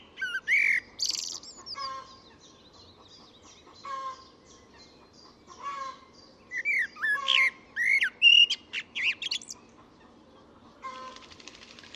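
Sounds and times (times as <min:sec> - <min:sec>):
bird whistles and buzzy chirps: 0:00.0 - 0:02.0, 0:06.5 - 0:09.6.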